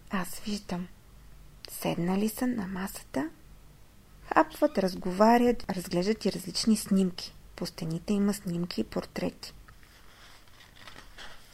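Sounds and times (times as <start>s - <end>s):
speech: 0.2s - 1.0s, 1.7s - 3.4s, 4.3s - 9.6s
book page being turned: 9.7s - 11.5s.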